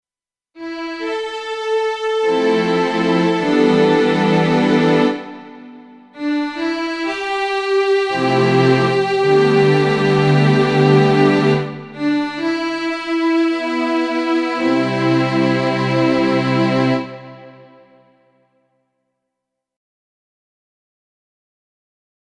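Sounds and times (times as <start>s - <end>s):
Korg Grandstage keyboard string sound: 0.6s - 18.1s.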